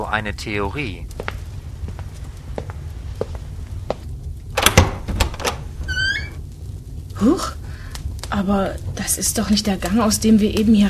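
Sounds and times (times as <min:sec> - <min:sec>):
low rumble: 0:00.0 - 0:10.8
speech: 0:00.1 - 0:01.2, 0:07.2 - 0:07.6, 0:08.3 - 0:10.8
door latch clicks and rattles: 0:04.6 - 0:06.4
squeaky door hinge creak: 0:05.8 - 0:06.4.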